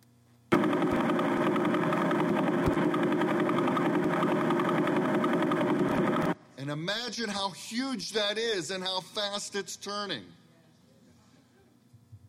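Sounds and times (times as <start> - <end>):
sonified radio pulses of a neutron star spinning 11 times per second: 0.5 - 6.4
speech: 6.7 - 10.4.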